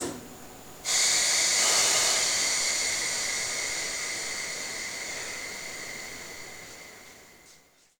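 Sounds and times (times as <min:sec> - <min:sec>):
train: 0:00.8 - 0:07.8.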